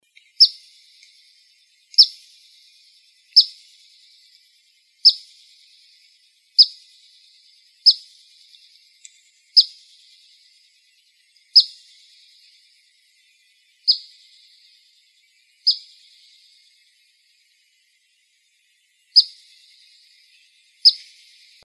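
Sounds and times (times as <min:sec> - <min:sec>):
black phoebe chip calls in Arizona: 0:00.4 - 0:00.7, 0:02.0 - 0:02.2, 0:03.4 - 0:03.6, 0:05.0 - 0:05.4, 0:06.6 - 0:06.8, 0:07.8 - 0:08.1, 0:09.6 - 0:09.8, 0:11.5 - 0:11.8, 0:13.9 - 0:14.3, 0:15.6 - 0:16.1, 0:19.2 - 0:19.5, 0:20.8 - 0:21.2.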